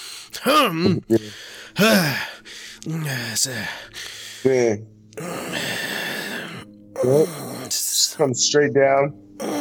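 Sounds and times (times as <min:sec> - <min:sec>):
man imitating heavy huffing mouth breaths: 0:00.0 - 0:04.5, 0:05.2 - 0:07.9
man imitating straining grunts of a man in a bathroom stall: 0:00.4 - 0:02.3, 0:05.2 - 0:08.2, 0:09.4 - 0:09.5
speech: 0:00.4 - 0:05.6, 0:07.0 - 0:07.5, 0:08.2 - 0:09.5.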